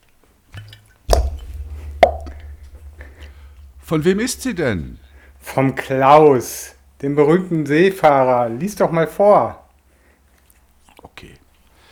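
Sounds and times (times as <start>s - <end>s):
cork popping from a bottle found floating at sea: 0.6s - 5.5s
low rumbling: 0.6s - 7.8s
speech: 3.9s - 9.6s, 11.2s - 11.4s.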